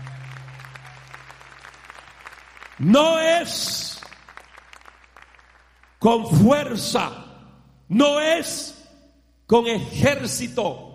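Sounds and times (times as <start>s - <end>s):
church congregation clapping: 0.0s - 6.9s
speech: 2.8s - 3.8s, 6.0s - 7.2s, 7.9s - 8.8s, 9.5s - 10.9s.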